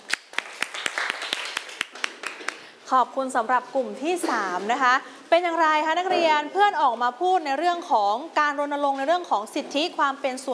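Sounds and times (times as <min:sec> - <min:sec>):
students in a classroom clapping: 0:00.0 - 0:02.8
noise: 0:00.0 - 0:10.5
speech: 0:02.9 - 0:10.5.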